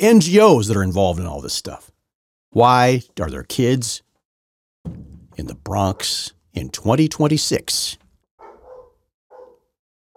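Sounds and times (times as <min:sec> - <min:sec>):
speech: 0:00.0 - 0:04.0, 0:04.8 - 0:08.0
dogs barking: 0:08.4 - 0:10.1.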